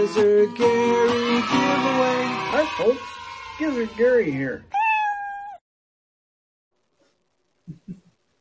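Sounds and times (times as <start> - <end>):
speech: 0.1 - 4.7
man imitating a cat meow: 4.7 - 5.6.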